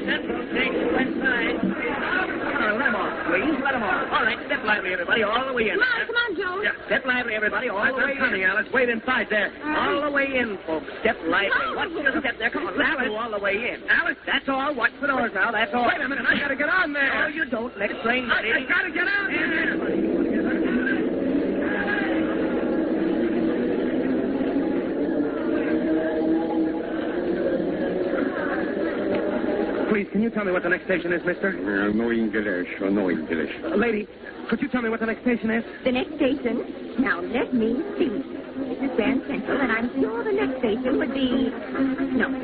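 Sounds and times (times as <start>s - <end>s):
crowd babble in a busy subway station: 0.0s - 42.4s
speech: 4.3s - 20.2s, 30.0s - 42.4s
subway train pulling into the station with a rumbling roar: 19.0s - 30.0s.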